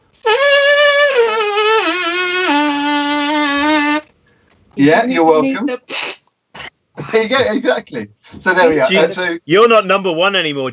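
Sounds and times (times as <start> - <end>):
trumpet player buzzing lips without the instrument: 0.2 - 4.1
speech: 4.8 - 6.0, 7.1 - 10.7.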